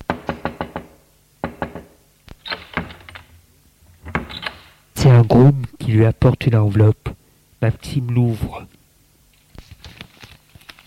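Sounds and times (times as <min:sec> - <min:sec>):
bellboy knocking on a hotel room door: 0:00.1 - 0:02.0
speech: 0:05.2 - 0:08.8.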